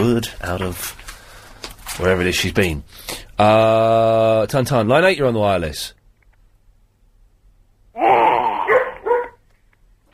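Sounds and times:
speech: 0.0s - 1.1s, 2.0s - 6.0s
dog barking: 8.0s - 9.4s.

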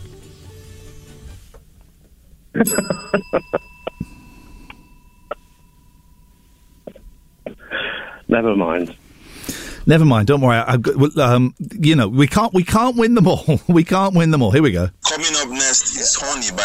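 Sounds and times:
speech: 2.6s - 3.6s, 8.3s - 9.1s, 9.9s - 16.6s
hand bell ringing: 2.6s - 7.5s.

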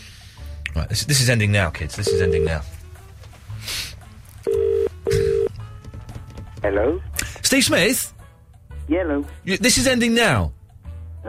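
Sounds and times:
speech: 0.8s - 2.8s, 6.6s - 8.2s, 8.9s - 10.6s
telephone ringing with electronic double-ring: 2.0s - 2.5s, 4.5s - 5.5s.

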